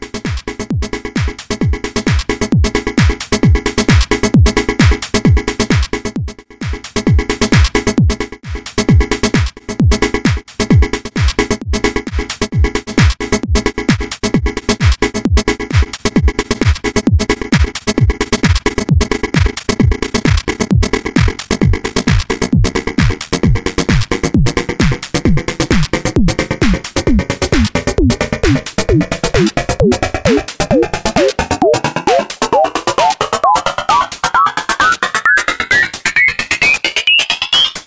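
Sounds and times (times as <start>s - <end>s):
drum loop: 0.3s - 8.2s, 8.8s - 10.4s, 11.2s - 37.7s.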